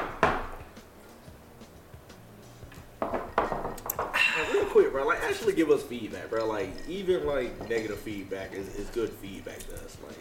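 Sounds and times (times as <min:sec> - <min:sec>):
glasses clinking together in a toast: 0:02.7 - 0:10.1
speech: 0:04.7 - 0:10.1.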